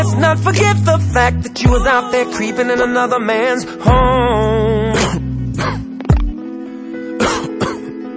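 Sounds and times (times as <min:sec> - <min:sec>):
speech: 0:00.2 - 0:05.8
harsh coughs with throat-clearing quality: 0:05.0 - 0:05.9, 0:07.2 - 0:07.9.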